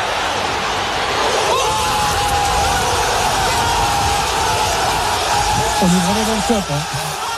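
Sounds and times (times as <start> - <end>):
large crowd of football supporters cheering a goal in a stadium: 0.0 - 7.3
speech: 5.8 - 7.0.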